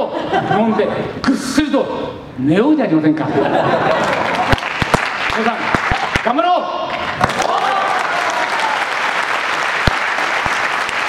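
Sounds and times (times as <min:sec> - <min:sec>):
laughter: 0:00.0 - 0:01.1, 0:03.2 - 0:04.6
speech: 0:00.4 - 0:04.2, 0:05.4 - 0:07.2
audience applauding at the end of a gathering: 0:03.9 - 0:06.3, 0:07.0 - 0:11.0
sharp claps: 0:04.0 - 0:07.6, 0:08.2 - 0:11.0.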